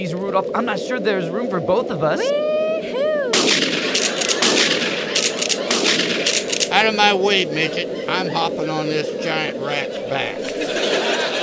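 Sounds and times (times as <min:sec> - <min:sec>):
speech: 0:00.0 - 0:02.5, 0:06.8 - 0:10.8
laughter: 0:02.3 - 0:11.4
gunshots: 0:03.3 - 0:07.1.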